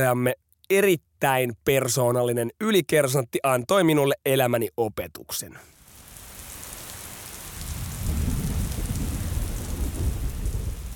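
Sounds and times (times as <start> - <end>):
speech: 0.0 - 5.8
heavy rain pouring down in a dense continuous hiss: 5.7 - 10.9.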